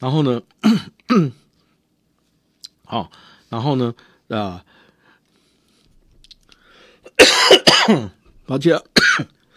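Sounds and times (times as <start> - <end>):
speech: 0.0 - 1.4, 2.9 - 4.8, 7.2 - 9.5
harsh raspy coughs: 0.6 - 1.4, 7.0 - 8.2, 9.0 - 9.4.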